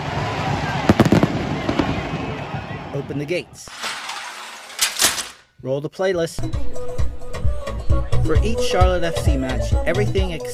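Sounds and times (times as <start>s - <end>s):
crowd-like hum: 0.0s - 4.4s
fireworks popping: 0.8s - 4.5s
speech: 3.1s - 3.8s, 5.6s - 6.8s, 8.2s - 10.5s.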